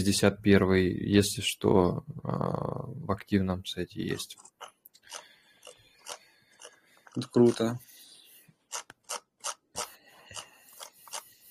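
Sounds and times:
speech: 0.0 - 5.2, 7.2 - 7.9
mouse scroll wheel clicking in ratcheting bursts: 4.3 - 7.8, 8.7 - 11.4.

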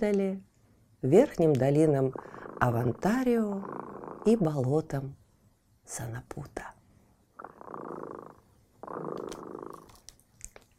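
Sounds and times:
speech: 0.0 - 5.2, 5.9 - 6.8
cat purring: 1.9 - 4.7, 7.4 - 10.0.

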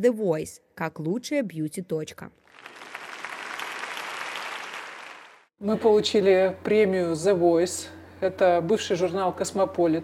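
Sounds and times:
speech: 0.0 - 2.9, 5.6 - 10.0
crowd applauding: 2.5 - 5.5.

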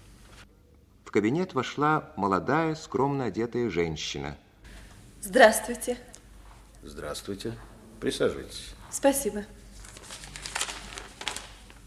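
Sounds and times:
speech: 1.2 - 4.4, 5.2 - 6.1, 6.8 - 9.6
papers rustling and crinkling as they are handed over in an office: 9.6 - 11.8.

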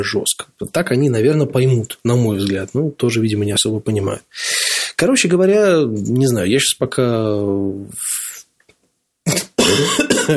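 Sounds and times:
speech: 0.0 - 8.2, 9.7 - 10.3
person coughing: 9.3 - 10.3.

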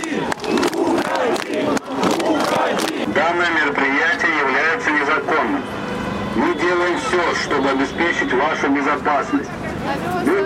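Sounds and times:
sharp clapping bursts from a protest crowd: 0.0 - 3.1
large protest crowd shouting and chanting: 0.0 - 10.4
speech: 7.5 - 10.4.

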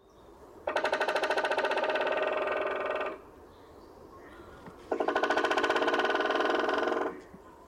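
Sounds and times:
white-backed woodpecker drumming: 0.6 - 3.2, 4.9 - 7.3.

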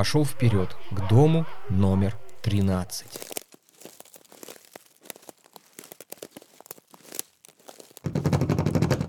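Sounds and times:
speech: 0.0 - 3.4
passport page being torn out: 2.2 - 8.5
passport paper crinkling and rustling: 2.2 - 9.0.

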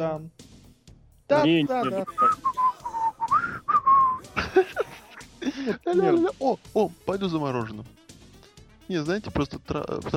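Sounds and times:
speech: 0.0 - 0.5, 1.3 - 2.8, 5.5 - 8.0, 8.9 - 10.1
man whistling a short wavering melody: 2.0 - 4.3
laughter: 4.2 - 6.0.

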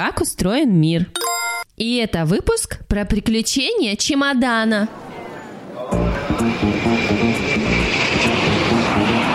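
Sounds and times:
speech: 0.0 - 5.0
airplane engine roar: 6.0 - 9.3.

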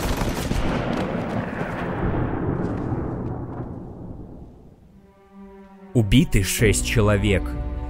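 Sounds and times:
dense sustained gunfire shooting at a crowd: 0.0 - 4.0
speech: 6.0 - 7.7.

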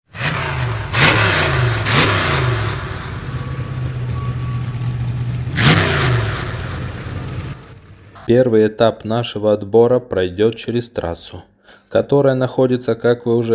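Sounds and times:
monster truck engines revving before a race: 0.0 - 8.3
speech: 8.2 - 13.5.

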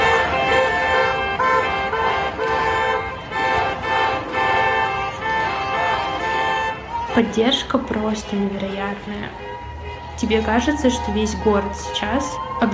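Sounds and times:
busy street traffic: 0.0 - 12.7
car horns honking rhythmically at a street protest: 0.0 - 12.7
protest crowd chanting: 0.0 - 12.7
speech: 7.2 - 12.7.

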